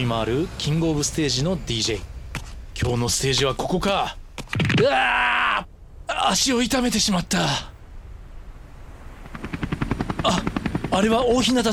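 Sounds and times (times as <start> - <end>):
speech: 0.0 - 2.1, 2.8 - 7.7, 10.2 - 11.7
helicopter flying overhead with rotor blades thumping: 0.0 - 5.0, 9.0 - 11.7.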